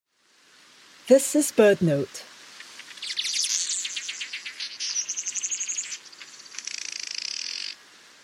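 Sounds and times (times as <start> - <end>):
speech: 1.1 - 2.3
weaverbird buzzy chattering song with sizzling trills and metallic buzz: 2.6 - 7.8.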